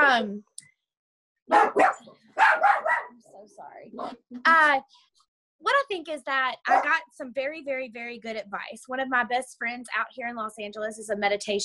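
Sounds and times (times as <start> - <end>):
speech: 0.2 - 0.5, 1.5 - 2.0, 3.4 - 11.6
dog barking: 1.5 - 3.2, 6.7 - 7.0.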